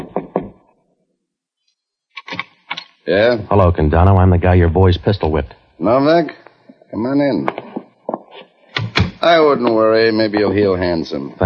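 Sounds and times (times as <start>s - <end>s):
firm knocks on a wooden office door: 0.0s - 0.6s
speech: 3.1s - 7.6s, 9.2s - 11.4s.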